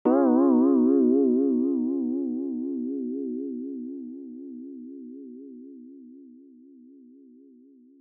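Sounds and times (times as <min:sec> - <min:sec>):
tone with vibrato: 0:00.1 - 0:02.9.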